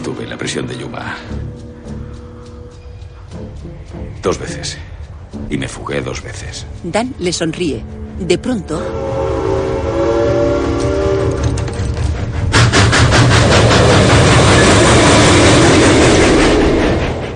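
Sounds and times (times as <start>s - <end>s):
speech: 0.0s - 1.7s, 3.6s - 9.6s
train rumbling and clattering approaching a station: 0.0s - 17.3s
train horn: 8.6s - 11.8s.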